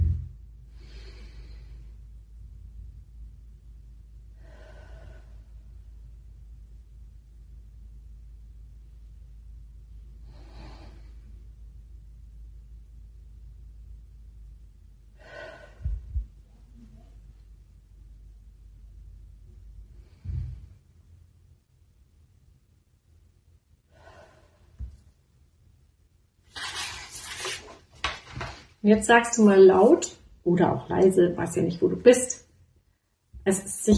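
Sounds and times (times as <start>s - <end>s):
steady low rumble: 0.0s - 23.8s
slow deep breathing during a guided relaxation exercise: 0.1s - 2.2s, 4.3s - 6.0s, 10.2s - 11.5s, 15.1s - 16.4s, 19.8s - 20.9s, 23.8s - 24.9s
speech: 28.8s - 32.4s, 33.5s - 33.9s.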